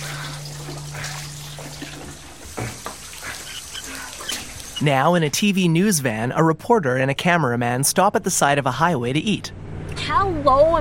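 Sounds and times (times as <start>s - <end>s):
water running and spilling from an overflowing toilet bowl: 0.0s - 5.0s
speech: 4.8s - 10.8s.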